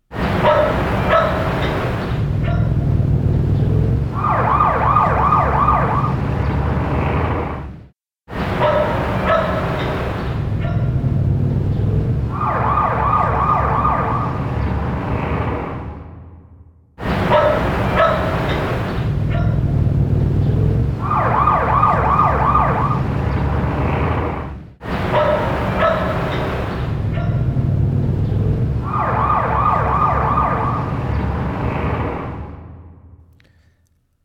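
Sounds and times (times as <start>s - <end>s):
street noise through an open window: 0.0s - 34.1s
dog barking: 0.4s - 1.6s, 2.4s - 2.8s, 8.6s - 9.8s, 10.6s - 10.9s, 17.2s - 18.4s, 19.3s - 19.6s, 25.1s - 26.3s, 27.1s - 27.5s
siren wailing: 2.5s - 7.6s, 10.9s - 16.4s, 19.4s - 23.7s, 27.2s - 32.9s.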